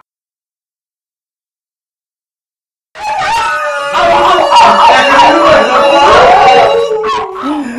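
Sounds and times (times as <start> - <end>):
wolves howling: 3.0 - 7.6.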